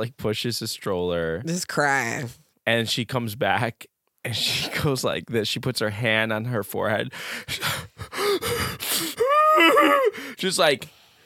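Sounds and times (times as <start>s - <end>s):
speech: 0.0s - 11.0s
person imitating heavy panicked breathing and gasping: 7.1s - 10.4s.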